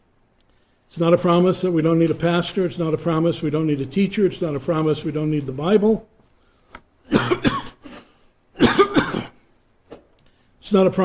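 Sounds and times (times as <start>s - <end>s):
speech: 1.0s - 6.1s, 10.7s - 11.0s
dry rasping cough from a sore throat: 7.1s - 9.4s.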